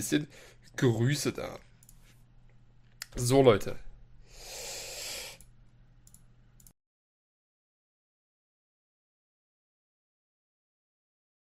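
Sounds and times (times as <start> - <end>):
speech: 0.0 - 1.7, 3.2 - 3.9
faint clicks: 1.8 - 3.2, 5.4 - 6.8
person blowing their nose: 4.3 - 5.4.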